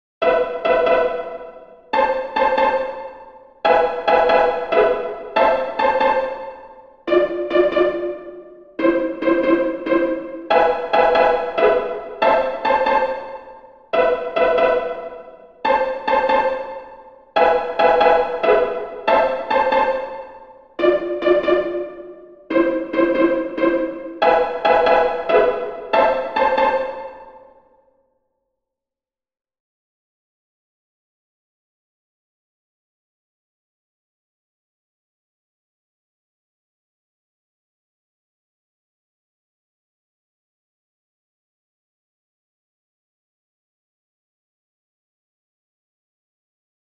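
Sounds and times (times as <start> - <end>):
solo pizzicato strings: 0.2 - 27.6.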